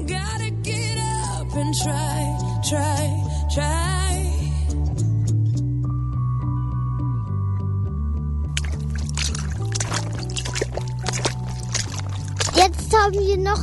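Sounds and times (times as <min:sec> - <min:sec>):
steady musical bed: 0:00.0 - 0:13.6
speech: 0:01.7 - 0:04.2, 0:13.0 - 0:13.6
water splashing and sloshing: 0:08.6 - 0:13.6.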